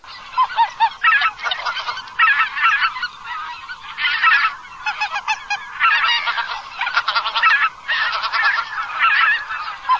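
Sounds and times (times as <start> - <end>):
oca lombardella goose calling: 0.0 - 9.9.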